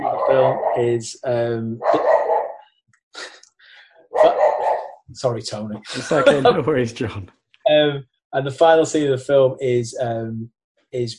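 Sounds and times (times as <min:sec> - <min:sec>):
dog barking and yipping: 0:00.0 - 0:00.9, 0:01.8 - 0:02.6, 0:04.2 - 0:05.0
laughter: 0:00.0 - 0:01.8, 0:05.2 - 0:10.4
speech: 0:00.3 - 0:02.2, 0:05.2 - 0:11.1.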